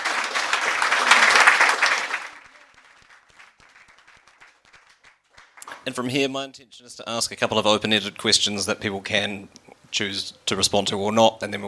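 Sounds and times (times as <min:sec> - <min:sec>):
audience applause for the presenters: 0:00.0 - 0:05.9
speech: 0:05.8 - 0:11.6.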